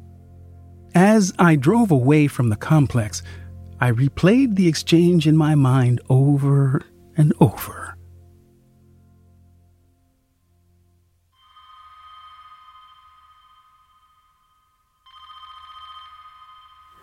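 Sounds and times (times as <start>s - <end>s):
speech: 1.0s - 7.9s
old-fashioned telephone bell ringing: 11.4s - 17.0s.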